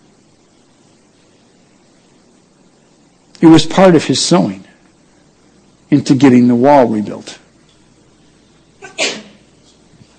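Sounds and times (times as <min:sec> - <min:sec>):
speech: 0:03.4 - 0:04.7, 0:05.9 - 0:07.4
sneeze: 0:08.8 - 0:09.5.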